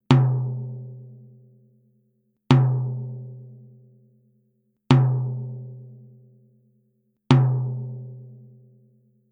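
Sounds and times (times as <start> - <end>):
clear medium tom drum: 0.1 - 0.8, 2.5 - 3.2, 4.9 - 5.6, 7.3 - 8.2.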